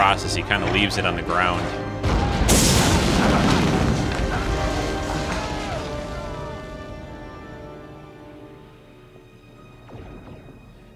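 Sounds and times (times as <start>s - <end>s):
speech: 0.0s - 2.6s
photon grenade explosions in a science-fiction battle: 2.0s - 7.8s.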